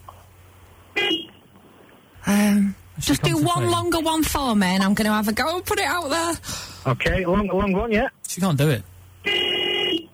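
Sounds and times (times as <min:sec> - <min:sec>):
speech: 0:02.5 - 0:09.4
car horn blast: 0:09.2 - 0:10.1.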